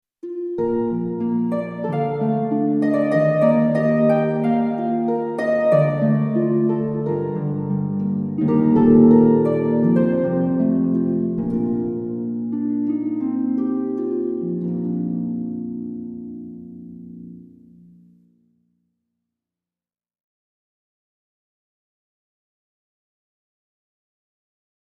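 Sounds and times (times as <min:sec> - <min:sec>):
pure space harp: 0:00.2 - 0:18.4.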